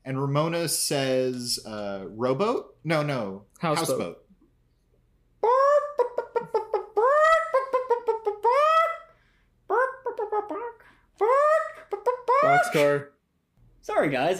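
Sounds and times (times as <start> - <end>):
speech: 0.1 - 4.2, 12.6 - 13.1, 13.8 - 14.3
person vocally imitating chicken squawking clucks and bawks: 5.4 - 9.1, 9.7 - 13.0.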